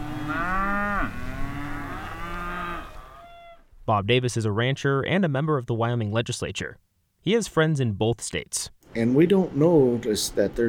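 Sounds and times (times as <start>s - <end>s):
cattle mooing in a valley pasture: 0.0s - 3.6s
speech: 3.9s - 10.6s.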